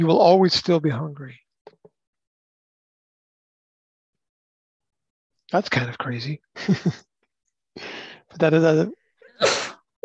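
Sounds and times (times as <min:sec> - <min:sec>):
speech: 0:00.0 - 0:01.4, 0:05.5 - 0:07.1, 0:07.8 - 0:09.6
quick breathy intake: 0:07.8 - 0:08.3
person sneezing: 0:09.4 - 0:09.8.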